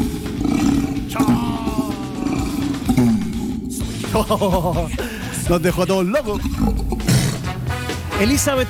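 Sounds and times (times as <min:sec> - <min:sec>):
orangutan call with rough roaring bellows and pulsing groans: 0:00.0 - 0:04.2, 0:06.2 - 0:07.8
laughter: 0:01.1 - 0:02.9, 0:03.8 - 0:05.7
speech: 0:01.2 - 0:01.6, 0:04.2 - 0:07.0, 0:08.2 - 0:08.6.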